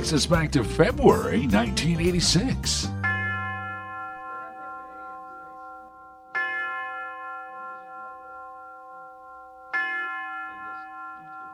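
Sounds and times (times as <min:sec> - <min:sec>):
speech: 0:00.0 - 0:03.0
university tower chime tolling: 0:02.8 - 0:11.5.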